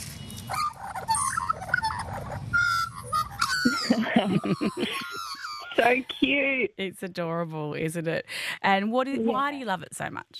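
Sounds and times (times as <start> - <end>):
Australian magpie or butcherbird singing a warbling song: 0.2 - 3.9
laughter: 3.4 - 6.3
speech: 3.9 - 5.0, 5.8 - 10.3.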